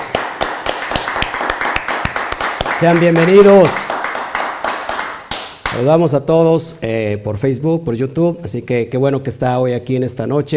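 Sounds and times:
dense wash of scattered clapping: 0.0 - 5.9
audience applauding in rhythmic unison: 0.0 - 6.0
speech: 2.8 - 3.8, 5.8 - 10.5.

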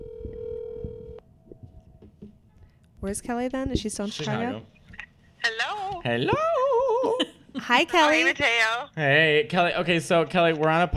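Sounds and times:
telephone dial tone: 0.0 - 1.2
speech: 3.0 - 4.7, 5.4 - 6.5, 7.1 - 10.9.

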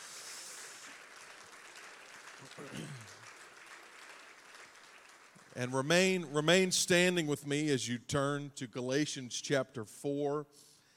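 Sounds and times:
room full of people clapping: 0.0 - 6.2
speech: 2.5 - 3.2, 5.6 - 10.7.

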